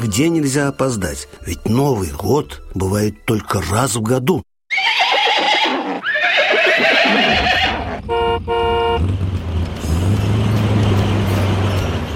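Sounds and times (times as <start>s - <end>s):
speech: 0.0s - 5.0s
troika horses whinnying: 4.7s - 8.0s
running truck engine rumbling: 7.5s - 12.1s
horn blast: 7.7s - 9.2s.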